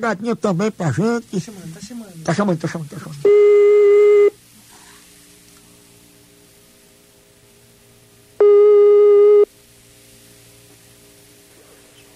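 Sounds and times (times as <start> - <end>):
speech: 0.0 - 3.7
quiet telephone line hiss: 0.0 - 12.1
telephone ringback tone while a call connects: 8.4 - 9.5.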